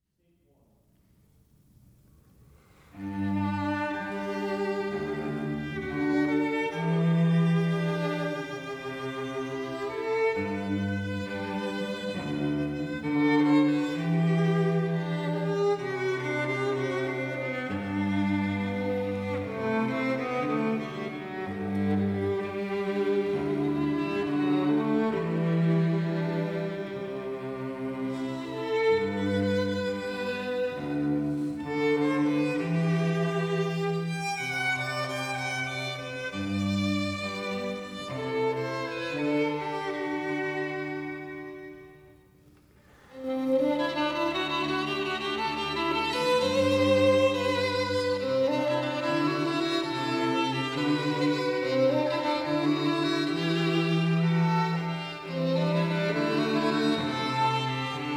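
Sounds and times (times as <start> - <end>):
cello: 2.1 - 58.1
violin: 2.1 - 58.1.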